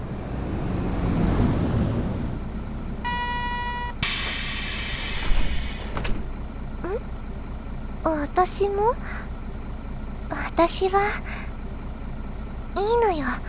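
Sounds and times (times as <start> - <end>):
bus engine rumbling: 0.0 - 6.6
bus brakes squealing: 3.1 - 6.3
speech: 8.1 - 9.3, 10.3 - 11.4, 12.8 - 13.4.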